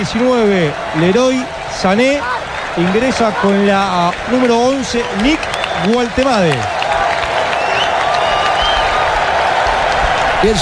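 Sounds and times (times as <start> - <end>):
speech: 0.0 - 6.8, 10.4 - 10.6
large stadium crowd murmuring: 0.0 - 7.2
cheers: 0.0 - 10.6
large stadium crowd clapping: 0.0 - 10.6
faint whistles: 5.4 - 6.1, 7.5 - 9.0.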